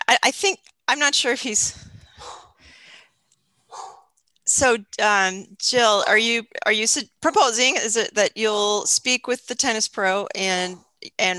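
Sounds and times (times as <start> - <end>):
speech: 0.2 - 1.9, 4.5 - 11.3
dog barking roughly: 2.2 - 2.5, 3.7 - 4.1.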